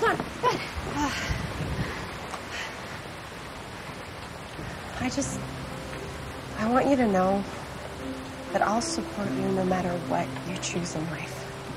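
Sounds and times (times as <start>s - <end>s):
heavy rain: 0.0s - 11.7s
speech: 5.0s - 5.6s, 6.6s - 11.4s.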